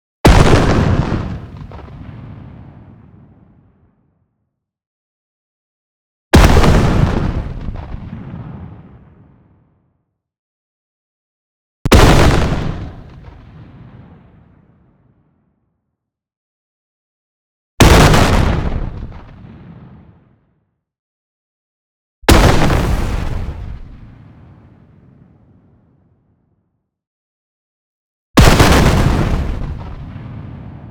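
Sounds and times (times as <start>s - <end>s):
long cannon shot explosion: 0.2s - 3.8s, 6.4s - 9.5s, 11.9s - 14.8s, 17.8s - 20.3s, 22.3s - 25.7s, 28.4s - 30.8s.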